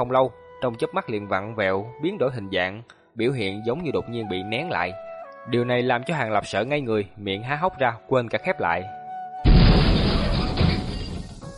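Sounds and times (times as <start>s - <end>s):
speech: 0.0s - 9.0s
huge earth-shaking explosion: 9.4s - 11.5s.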